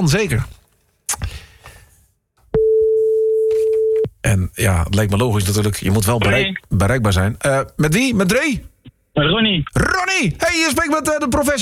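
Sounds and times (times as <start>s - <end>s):
speech: 0.0s - 1.2s, 4.2s - 11.6s
telephone line tone as a call is placed: 2.6s - 4.1s.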